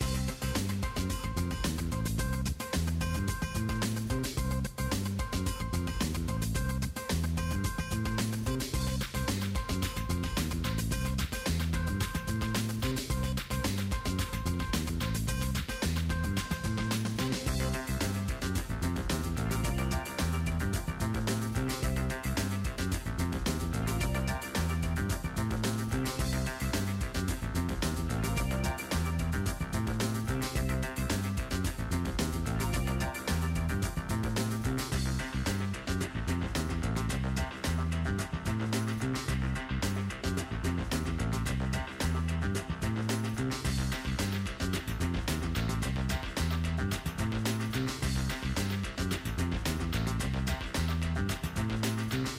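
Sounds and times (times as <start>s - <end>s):
slot machine game background music for main UI: 0.0s - 52.3s.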